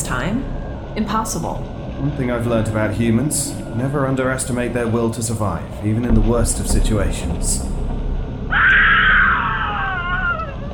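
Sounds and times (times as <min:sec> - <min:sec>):
low steady rumble: 0:00.0 - 0:10.7
speech: 0:00.1 - 0:07.8
person screaming: 0:08.5 - 0:10.6.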